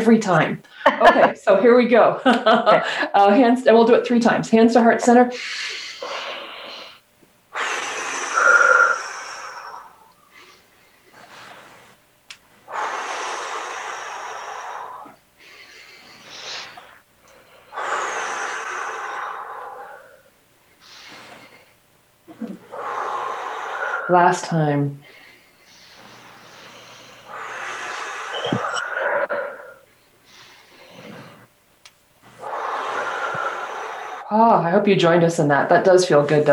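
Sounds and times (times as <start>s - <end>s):
speech: 0.0s - 6.2s, 24.1s - 25.0s, 34.7s - 36.5s
deep slow breathing during a guided stretch: 5.3s - 24.2s, 24.9s - 31.6s, 32.2s - 34.3s.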